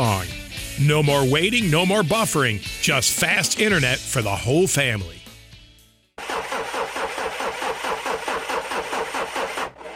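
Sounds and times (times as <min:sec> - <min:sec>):
speech: 0:00.0 - 0:05.2
car engine cranking but failing to start: 0:06.2 - 0:09.9.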